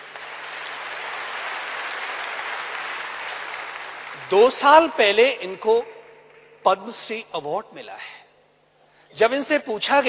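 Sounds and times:
crowd applauding: 0:00.0 - 0:04.6
speech: 0:04.3 - 0:05.9, 0:06.6 - 0:08.2, 0:09.1 - 0:10.0.

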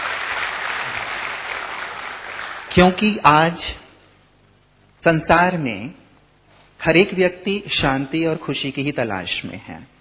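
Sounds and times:
audience applause at a talk on peace and happiness: 0:00.0 - 0:02.7
speech: 0:02.8 - 0:03.8, 0:05.0 - 0:06.0, 0:06.8 - 0:09.9.

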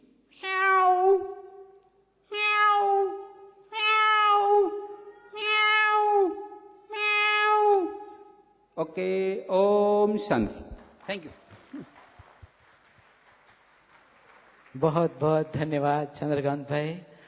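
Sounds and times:
cat meowing: 0:00.4 - 0:01.4, 0:02.3 - 0:08.1
speech: 0:08.8 - 0:11.9, 0:14.8 - 0:17.1.

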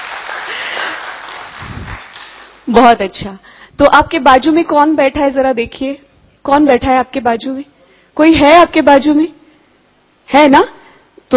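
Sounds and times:
audience applause at a lecture: 0:00.0 - 0:02.6
speech: 0:02.7 - 0:09.4, 0:10.3 - 0:11.3.

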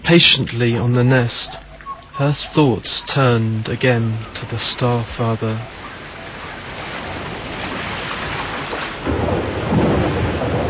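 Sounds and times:
speech: 0:00.1 - 0:05.8
deep rumble of thunder: 0:03.1 - 0:10.6
heavy rain pouring: 0:03.1 - 0:10.6.

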